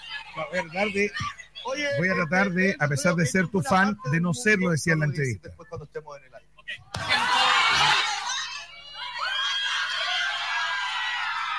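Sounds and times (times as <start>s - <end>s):
speech: 0.4s - 8.0s
crowd of girls screaming excitedly: 7.0s - 11.5s.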